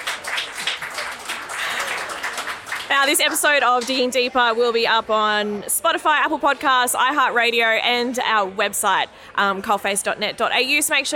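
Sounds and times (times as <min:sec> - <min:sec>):
audience applause for a guest: 0:00.0 - 0:04.0
speech: 0:02.9 - 0:11.1.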